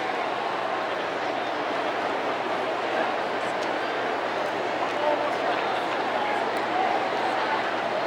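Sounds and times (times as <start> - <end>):
baseball crowd ambience: 0.0 - 8.0.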